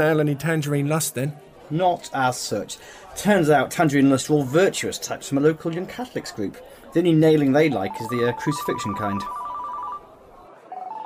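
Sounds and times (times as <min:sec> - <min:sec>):
speech: 0:00.0 - 0:09.4
mobile phone ringing with a bright electronic tone: 0:07.7 - 0:10.1, 0:10.7 - 0:11.0.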